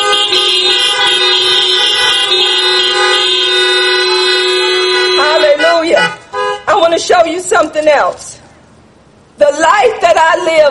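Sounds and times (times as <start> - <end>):
car horns honking: 0.0 - 7.0
speech: 7.8 - 8.3, 10.2 - 10.6.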